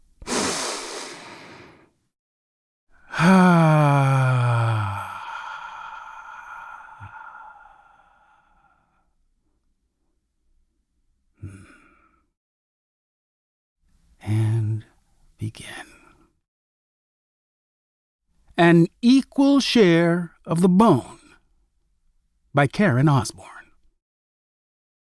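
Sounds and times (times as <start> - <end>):
deep breath: 0.2 - 2.0, 2.9 - 9.6, 11.4 - 12.4
speech: 18.7 - 21.2, 22.6 - 23.6.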